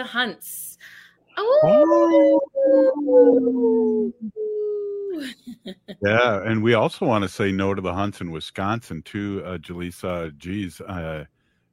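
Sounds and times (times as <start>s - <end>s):
speech: 0.0s - 11.7s
wolves howling in a chorus: 1.5s - 4.8s.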